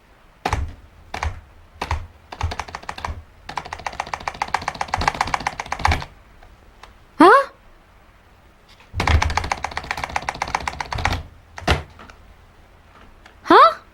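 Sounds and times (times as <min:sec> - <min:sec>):
typing on a malfunctioning computer keyboard: 0:00.4 - 0:06.2, 0:09.0 - 0:12.2.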